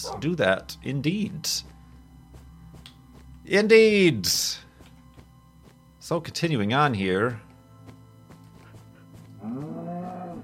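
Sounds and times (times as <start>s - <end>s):
speech: 0.0s - 1.7s, 3.5s - 4.6s, 6.1s - 7.4s, 9.4s - 9.8s
low steady hum: 0.0s - 10.4s
cow giving a long drawn-out moo: 9.4s - 10.4s.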